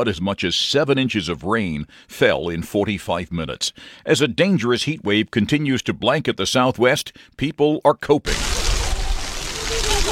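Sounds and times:
speech: 0.0s - 8.6s
spraying water at a splash pad in San Antonio, Texas: 8.3s - 10.1s
children's voices playing at a splash pad in San Antonio, Texas: 9.4s - 10.1s.

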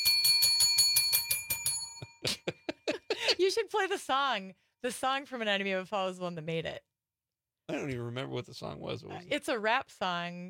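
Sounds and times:
bell ringing: 0.0s - 2.9s
laughter: 2.1s - 3.5s
speech: 3.4s - 6.9s, 7.7s - 10.4s.

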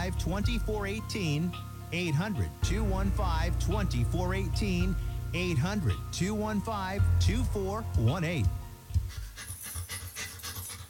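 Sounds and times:
speech: 0.1s - 8.6s
family dog panting: 9.0s - 10.8s.

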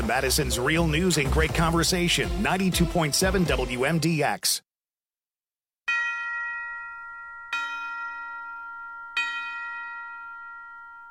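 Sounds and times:
speech: 0.1s - 4.7s
resonant bell strikes: 5.9s - 11.0s.

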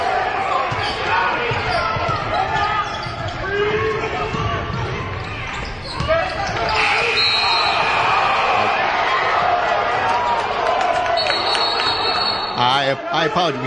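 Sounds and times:
crowd roar in a basketball arena: 0.0s - 13.6s
referee's whistle blasts in a basketball arena: 6.7s - 8.2s, 11.2s - 12.8s.

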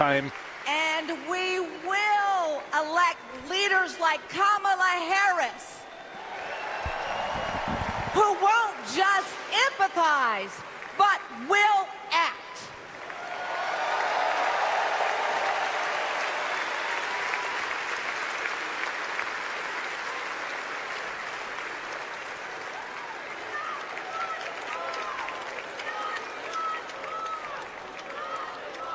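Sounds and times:
applause-like noise: 0.0s - 3.1s, 5.9s - 11.4s, 12.8s - 28.9s
speech: 0.0s - 5.8s, 8.2s - 12.2s
crowd cheering in an arena at a political convention: 5.6s - 11.7s, 12.6s - 28.9s.

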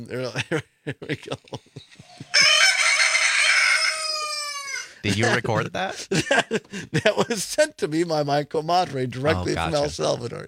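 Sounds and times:
speech: 0.0s - 2.7s, 5.0s - 10.4s
laughter: 0.4s - 2.7s, 5.0s - 7.5s
rooster crowing: 2.3s - 5.0s.

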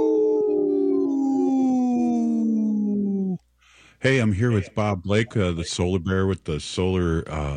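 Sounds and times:
people howling like wolves: 0.0s - 3.4s
speech: 4.0s - 7.5s.

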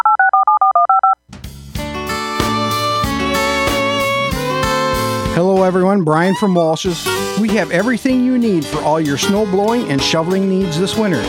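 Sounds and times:
touch-tone telephone keypad dialing beeps: 0.0s - 1.2s
loud music: 1.4s - 11.2s
speech: 5.7s - 11.2s.

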